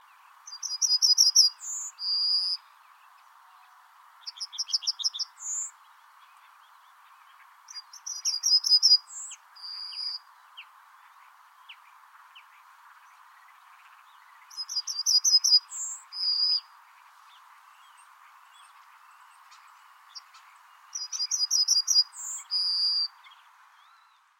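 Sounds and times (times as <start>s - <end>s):
yellowhammer singing: 0.0s - 24.3s.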